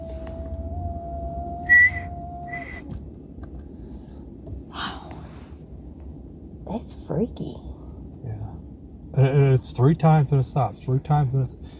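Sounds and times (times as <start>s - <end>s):
faint hum: 0.0s - 11.7s
low rumble: 0.0s - 11.7s
short high-pitched human whistle note: 0.6s - 2.9s
speech: 6.7s - 7.7s, 9.2s - 11.7s.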